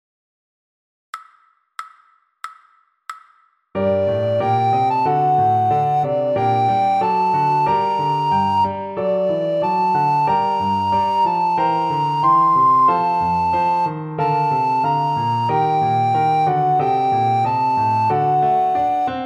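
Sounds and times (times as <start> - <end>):
recorder playing slowly: 3.8 - 19.2.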